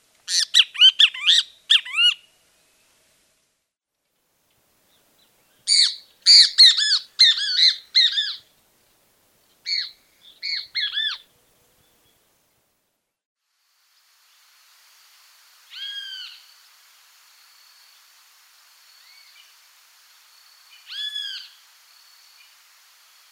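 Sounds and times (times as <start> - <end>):
great kiskadee giving harsh squawking calls: 0.3 - 2.3, 5.7 - 8.4, 9.7 - 11.2, 20.9 - 21.6.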